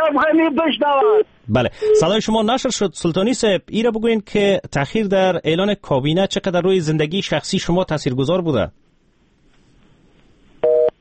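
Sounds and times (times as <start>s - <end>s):
speech: 0.0s - 8.8s
phone busy tone dual-pitch beep after a cut-off call: 1.8s - 2.1s, 10.6s - 10.9s.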